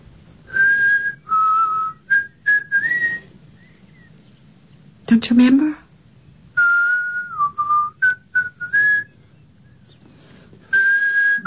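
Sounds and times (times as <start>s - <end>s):
faint hum: 0.0s - 11.4s
human whistling a short tune: 0.5s - 3.3s, 6.6s - 9.2s, 10.7s - 11.4s
speech: 5.1s - 5.8s.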